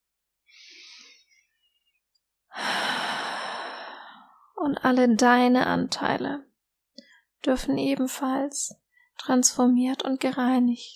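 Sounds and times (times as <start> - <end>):
deep breath in and out during a guided relaxation: 0.5 - 1.6, 2.5 - 4.5
speech: 4.6 - 6.5, 7.4 - 10.9.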